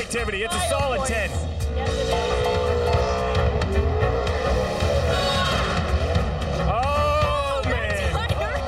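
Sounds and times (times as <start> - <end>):
speech: 0.1 - 2.3
car engine roaring during a burnout: 1.4 - 8.6.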